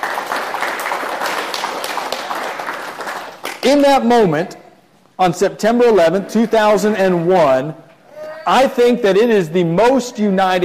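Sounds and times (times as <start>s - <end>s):
crowd applauding: 0.0s - 3.6s
speech: 3.6s - 4.6s, 5.2s - 7.8s, 8.4s - 10.6s.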